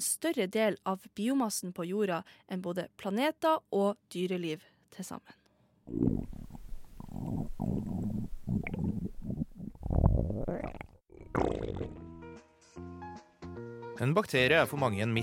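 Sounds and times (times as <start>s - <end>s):
speech: 0.0s - 6.6s, 7.2s - 12.0s, 14.0s - 15.2s
stomach rumbling with gurgling churning growls: 5.9s - 12.1s.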